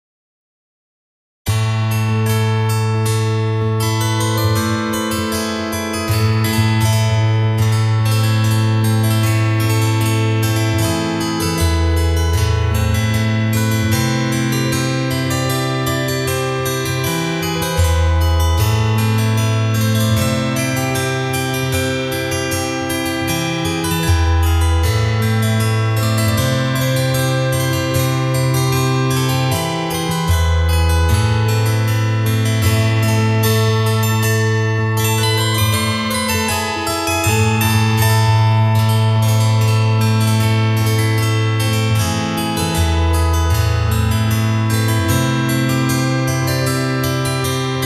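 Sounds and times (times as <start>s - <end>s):
harp: 1.5s - 47.8s.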